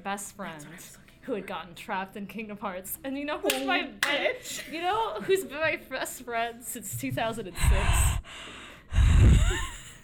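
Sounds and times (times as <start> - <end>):
speech: 0.0 - 8.6
single heavy breath blown into a microphone: 7.5 - 10.0.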